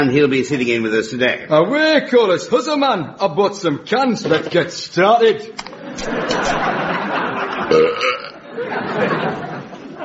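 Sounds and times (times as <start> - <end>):
speech: 0.0 - 6.8
laughter: 5.6 - 10.0
long gravelly rumbling belch: 7.6 - 8.4.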